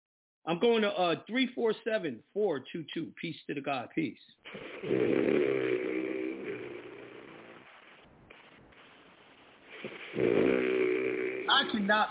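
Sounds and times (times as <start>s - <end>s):
speech: 0.5s - 5.8s, 9.8s - 10.6s, 11.6s - 12.0s
man snoring over a phone line: 4.5s - 7.8s, 9.7s - 11.8s.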